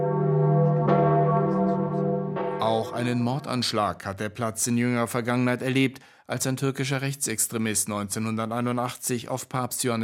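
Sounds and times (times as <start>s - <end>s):
large church bell tolling: 0.0s - 3.9s
speech: 2.8s - 10.0s.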